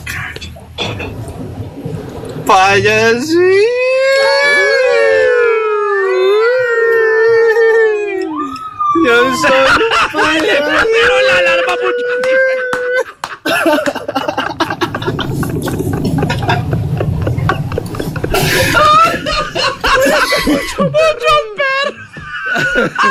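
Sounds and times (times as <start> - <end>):
speech: 2.5 - 4.6, 9.0 - 12.6, 13.6 - 14.0, 19.6 - 22.0, 22.6 - 23.1
person vocally imitating an ambulance siren with Doppler effect: 3.8 - 9.7
laughter: 9.4 - 23.1.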